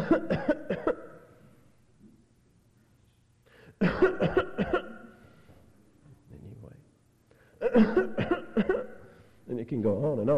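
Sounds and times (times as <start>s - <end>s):
voice imitating a child's constant hacking cough: 0.0s - 1.2s, 3.8s - 5.1s, 7.6s - 9.0s
speech: 0.1s - 0.6s, 9.6s - 10.3s.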